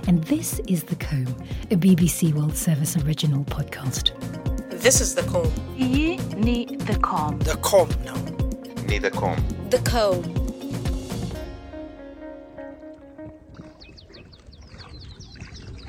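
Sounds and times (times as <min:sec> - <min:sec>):
speech: 0:00.1 - 0:10.4
musical phrase: 0:04.6 - 0:14.0.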